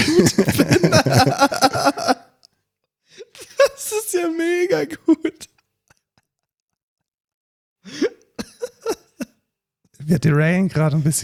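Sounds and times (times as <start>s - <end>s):
person clearing throat with raspy harrumphs: 0.0s - 2.2s
laughter: 0.0s - 2.3s, 3.4s - 5.5s
speech: 10.1s - 11.2s.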